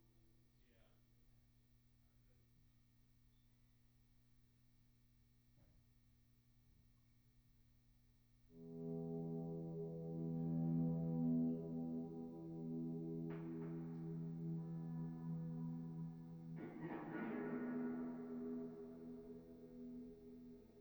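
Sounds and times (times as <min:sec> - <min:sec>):
guitar: 0:08.6 - 0:20.7.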